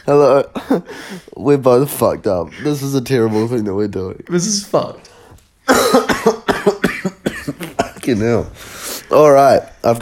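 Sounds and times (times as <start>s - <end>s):
speech: 0.0s - 5.1s, 5.7s - 6.4s, 8.1s - 10.0s
harsh chesty coughs: 5.6s - 8.2s.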